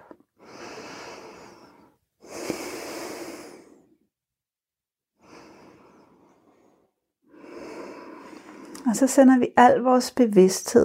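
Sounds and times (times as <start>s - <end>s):
slow deep breaths: 0.0s - 4.1s, 5.2s - 8.9s
speech: 8.9s - 10.8s.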